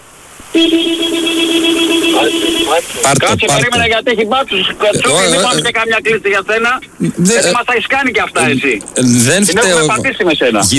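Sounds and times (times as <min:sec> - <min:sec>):
car horn honking: 0:00.5 - 0:03.9
speech: 0:00.6 - 0:10.7.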